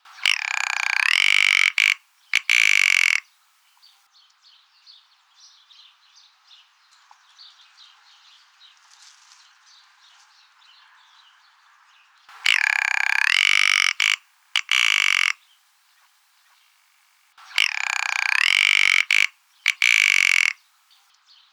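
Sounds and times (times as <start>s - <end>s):
rock ptarmigan singing: 0.1s - 3.2s, 12.3s - 15.4s, 17.4s - 20.6s.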